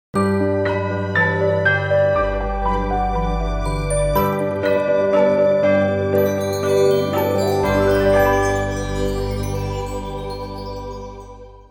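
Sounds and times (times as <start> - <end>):
jingle in a jingles medley: 0.2 - 11.6.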